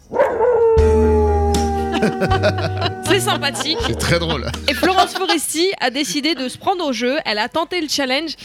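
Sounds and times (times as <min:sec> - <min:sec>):
dog howling along to a sung song: 0:00.2 - 0:03.6
laughter: 0:01.7 - 0:06.5
speech: 0:02.0 - 0:08.4.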